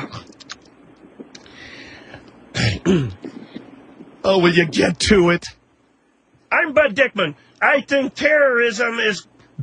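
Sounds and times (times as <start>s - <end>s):
person clearing throat: 2.6s - 3.7s
speech: 2.9s - 3.2s, 4.2s - 5.6s, 6.6s - 9.6s.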